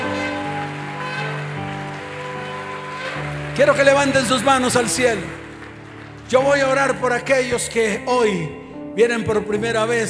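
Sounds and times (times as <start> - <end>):
audience in a church applauding: 0.0 - 7.6
speech: 3.6 - 5.4, 6.3 - 10.0.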